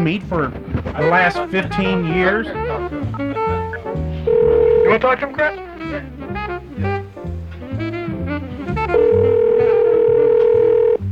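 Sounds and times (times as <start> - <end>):
speech: 0.0 - 3.2, 4.9 - 6.2
rhythmic music bed: 0.0 - 11.1
electronic ringback tone of an outgoing call: 4.3 - 5.0, 9.0 - 11.0.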